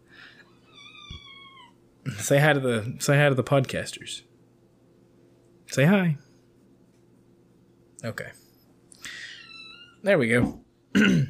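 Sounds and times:
young female cat in its kitten phase meowing: 0.7s - 1.8s
speech: 2.1s - 4.3s, 5.8s - 6.2s, 8.0s - 8.4s, 10.0s - 11.2s.

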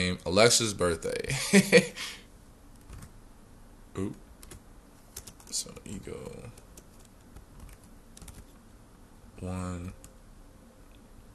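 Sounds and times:
steady hiss: 0.0s - 11.3s
speech: 0.1s - 2.2s, 4.0s - 4.2s, 5.5s - 6.6s, 9.4s - 10.0s
typing on a computer keyboard: 2.8s - 3.1s, 4.4s - 5.6s, 6.2s - 8.5s.

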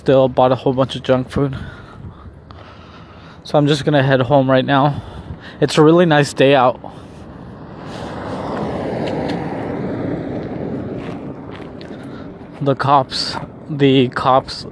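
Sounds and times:
speech: 0.0s - 1.8s, 3.4s - 7.0s, 12.6s - 14.6s
police truck engine and road rumble driving past: 6.8s - 12.6s.

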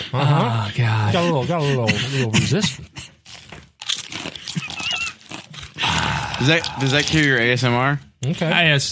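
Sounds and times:
speech: 0.1s - 3.1s, 6.4s - 8.9s
crunching and crinkling sound effect imitating food being chewed: 3.0s - 7.7s.

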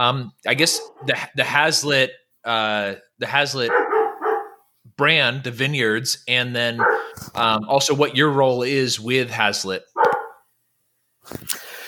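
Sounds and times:
speech: 0.0s - 3.8s, 5.0s - 10.0s, 11.3s - 11.7s
dog barking: 0.7s - 1.2s, 3.6s - 4.7s, 6.8s - 7.2s, 10.0s - 10.4s.

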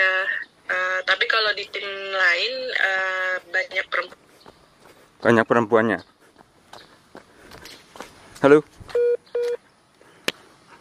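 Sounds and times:
speech: 1.1s - 4.2s, 5.2s - 6.1s, 8.4s - 9.0s
short low-pitched telephone line beeps as a call disconnects: 9.0s - 9.6s.

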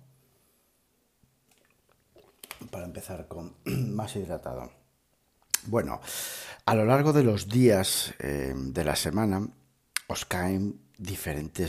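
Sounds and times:
swallow of water: 1.5s - 2.7s
wet mouth clicks from sipping water: 1.5s - 2.7s, 5.4s - 5.7s, 9.9s - 10.1s
speech: 2.8s - 4.8s, 5.6s - 11.6s.

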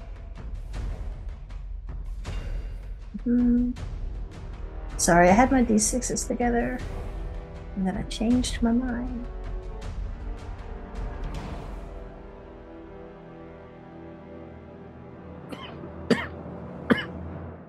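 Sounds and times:
low rumbling noise: 0.0s - 15.3s
speech: 3.2s - 3.9s, 5.0s - 7.1s, 7.8s - 9.4s
soft coughs: 15.5s - 17.2s.

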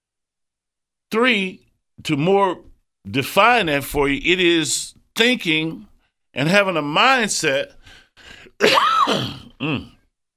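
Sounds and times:
speech: 1.1s - 10.0s
person grunting: 8.6s - 10.0s
person clearing rough throat after inhaling sanitizer spray: 8.6s - 10.1s.

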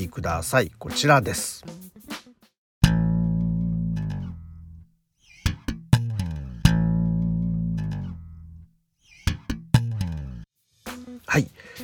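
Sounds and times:
speech: 0.0s - 1.8s, 11.4s - 11.8s
solo bass guitar playing a repeating phrase with muted ghost notes: 2.8s - 10.4s.

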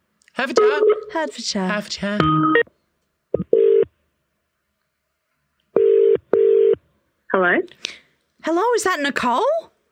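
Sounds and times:
speech: 0.4s - 2.7s, 8.5s - 9.7s
telephone ringing tone of a call placed to the UK: 3.4s - 3.9s, 5.8s - 6.8s.

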